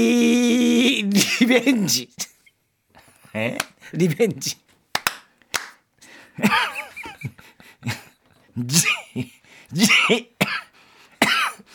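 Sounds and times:
speech: 0.0 - 0.3, 1.0 - 2.3, 3.4 - 4.6, 6.4 - 8.0, 8.6 - 10.6
person coughing: 1.2 - 1.7, 9.8 - 11.7.

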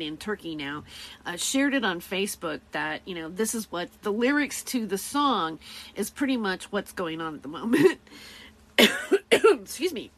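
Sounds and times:
speech: 0.0 - 10.1
harsh coughs: 8.8 - 9.6.

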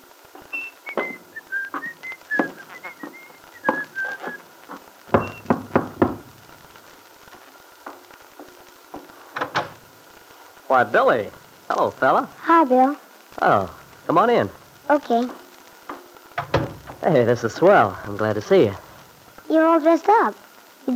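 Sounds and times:
footsteps thumping up wooden steps: 0.4 - 9.8, 15.2 - 17.0
person whistling a bright cheerful tune: 0.5 - 4.4
sharp knocks: 5.1 - 6.3, 15.9 - 17.0
speech: 10.7 - 15.4, 17.0 - 18.8, 19.5 - 20.9.

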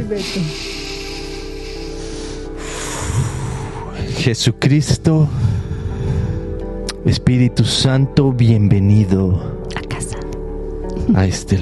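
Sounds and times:
speech: 0.0 - 0.7, 4.1 - 5.4, 7.0 - 9.6, 11.1 - 11.5
deep breathing in and out at the opening of a group prayer: 0.0 - 4.4, 5.2 - 6.9.

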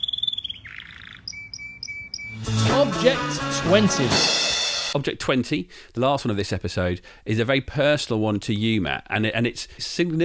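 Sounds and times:
small yellow bird chirping: 0.0 - 2.4
speech: 2.8 - 10.2.

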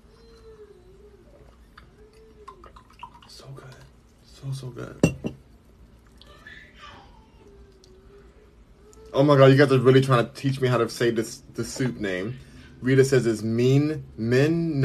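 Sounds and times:
liquor pouring into a glass: 1.4 - 4.3
speech: 3.4 - 3.8, 4.4 - 5.4, 9.2 - 14.8
glass clinking: 5.0 - 5.4.

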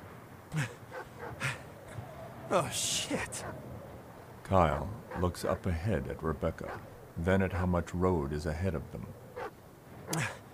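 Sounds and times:
steady low rumble: 0.0 - 10.1
speech: 0.5 - 0.8, 2.5 - 3.7, 4.5 - 9.2, 10.1 - 10.4
dogs barking: 0.6 - 3.7, 5.0 - 5.4, 6.5 - 7.1, 9.3 - 9.5.

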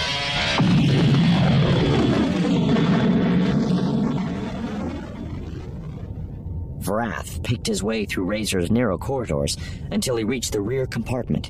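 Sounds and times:
spaceship engines roaring to life for launch: 0.0 - 7.4
steady high whine: 0.0 - 8.7
speech: 7.0 - 11.4.

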